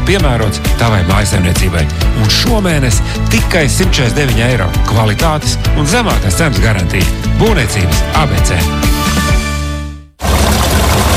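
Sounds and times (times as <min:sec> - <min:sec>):
speech: 0:00.1 - 0:09.1
fuel pouring into a car's tank at a fuel station: 0:10.2 - 0:11.1.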